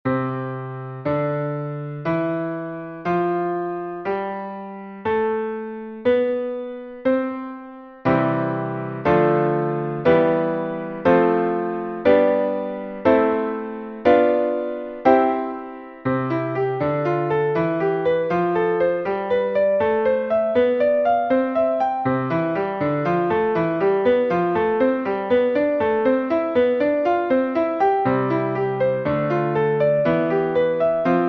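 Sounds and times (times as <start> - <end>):
chord shapes basic scales and triads in C played: 0.1 - 31.2.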